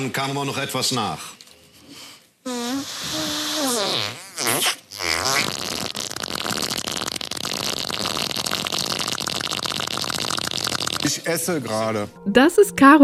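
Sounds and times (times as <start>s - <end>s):
speech: 0.0s - 1.4s, 11.3s - 13.0s
woman blowing a wet raspberry imitating a fart: 2.5s - 11.1s.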